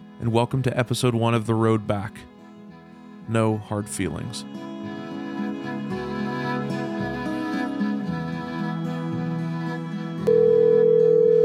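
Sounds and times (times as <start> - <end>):
soft music: 0.0 - 11.4
speech: 0.2 - 2.3, 3.3 - 4.7
telephone ringing tone from a phone call: 10.3 - 11.4.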